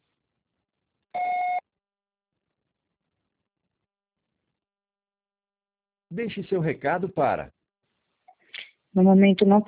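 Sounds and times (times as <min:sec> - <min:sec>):
answering machine beep: 0:01.2 - 0:01.6
speech: 0:06.1 - 0:07.6, 0:09.0 - 0:09.6.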